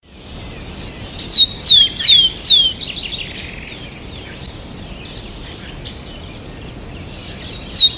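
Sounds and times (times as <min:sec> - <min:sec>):
bird whistling: 0:00.7 - 0:03.6, 0:06.5 - 0:07.9
speech: 0:00.8 - 0:01.9.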